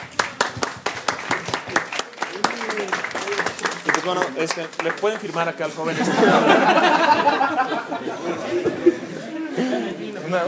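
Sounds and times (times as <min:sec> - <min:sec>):
small audience applauding after a comic book talk: 0:00.0 - 0:05.6
speech: 0:04.0 - 0:10.4
laughter: 0:05.7 - 0:10.4.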